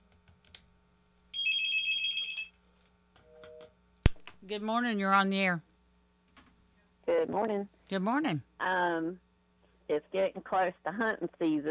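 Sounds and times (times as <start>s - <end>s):
telephone ringing for incoming call: 1.4s - 2.6s
speech: 4.5s - 5.7s, 7.2s - 9.2s, 9.9s - 11.6s.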